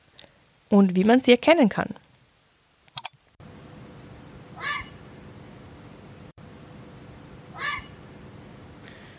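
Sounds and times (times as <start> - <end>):
speech: 0.7 - 2.0
grey heron giving harsh croaking calls: 4.6 - 5.0, 7.5 - 8.0.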